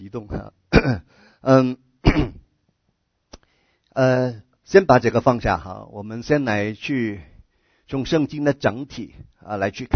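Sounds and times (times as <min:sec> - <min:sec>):
speech: 0:00.1 - 0:02.2, 0:04.0 - 0:07.3, 0:07.9 - 0:09.9
person clearing throat: 0:00.7 - 0:01.1, 0:02.0 - 0:02.5
person coughing sharply: 0:00.7 - 0:01.1, 0:02.0 - 0:02.5.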